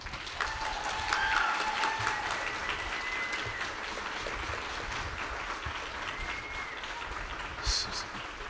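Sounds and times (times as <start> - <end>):
large audience applause: 0.0 - 8.4
whoops and cheers: 0.3 - 4.0, 5.8 - 7.2.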